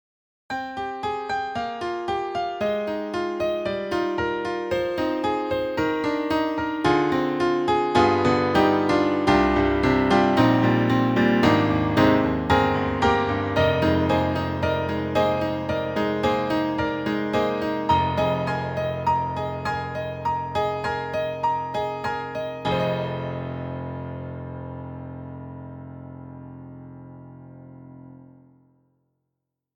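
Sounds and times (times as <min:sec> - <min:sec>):
Steinway piano SoundFont: 0:00.5 - 0:28.9.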